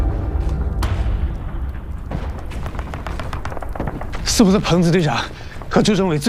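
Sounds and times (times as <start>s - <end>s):
steady low rumble: 0.0s - 5.1s
gunfire from outside the city: 2.1s - 4.8s
speech: 4.4s - 6.2s.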